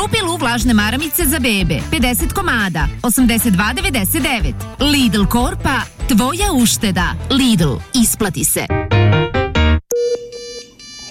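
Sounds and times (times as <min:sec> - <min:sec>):
speech: 0:00.0 - 0:09.0
electronic ringtone for an incoming video call: 0:09.9 - 0:11.0.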